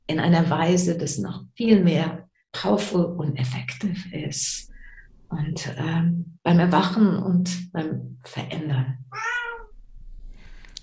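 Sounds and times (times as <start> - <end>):
speech: 0.1 - 4.7, 5.3 - 9.4
cat meowing: 9.1 - 9.8.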